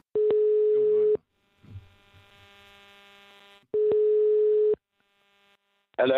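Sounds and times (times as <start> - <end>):
telephone ringback tone heard through the handset: 0.2 - 1.2, 3.8 - 4.8.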